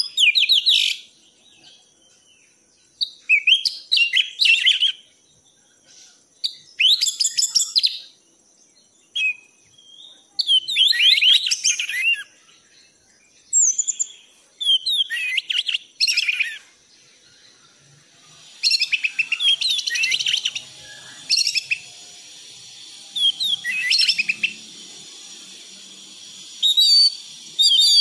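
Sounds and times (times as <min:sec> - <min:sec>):
faint steady background hiss: 0:00.0 - 0:28.0
thrush singing: 0:18.0 - 0:28.0.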